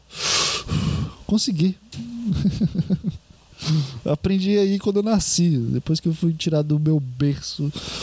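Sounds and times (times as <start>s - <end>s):
person breathing deeply demonstrating a breathing technique: 0.1s - 1.3s, 3.5s - 4.1s, 7.7s - 8.0s
speech: 1.3s - 8.0s
laughter: 2.2s - 3.2s.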